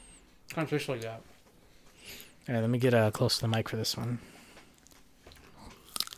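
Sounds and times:
speech: 0.5s - 1.3s, 2.0s - 4.4s
biting into a dried beef stick: 4.8s - 6.1s.

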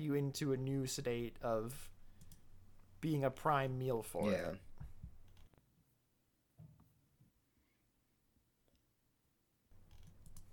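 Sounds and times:
speech: 0.0s - 2.0s, 3.0s - 4.7s
computer mouse clicks: 2.2s - 2.4s, 9.8s - 10.5s.

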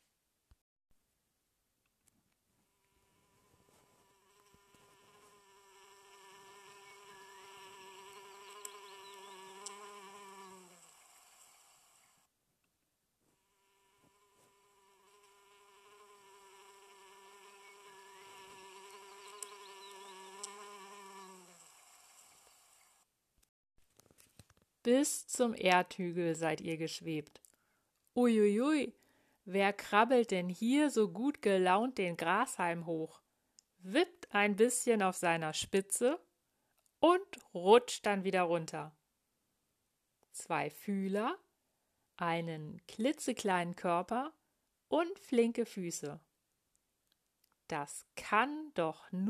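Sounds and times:
flying bee buzzing: 3.2s - 12.3s, 13.6s - 23.0s
speech: 24.9s - 27.4s, 28.2s - 33.2s, 33.8s - 36.3s, 37.0s - 39.0s, 40.4s - 41.4s, 42.2s - 46.3s, 47.7s - 49.2s.

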